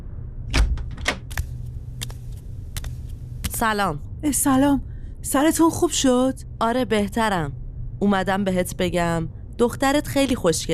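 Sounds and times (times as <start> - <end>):
steady low hum: 0.0 - 10.7
door opening: 0.5 - 1.4
speech: 3.6 - 10.7.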